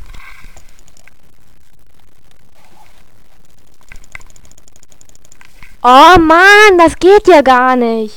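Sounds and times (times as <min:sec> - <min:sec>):
steady low noise: 0:00.0 - 0:08.1
computer mouse clicking on a download link: 0:03.8 - 0:05.8
speech: 0:05.8 - 0:08.1.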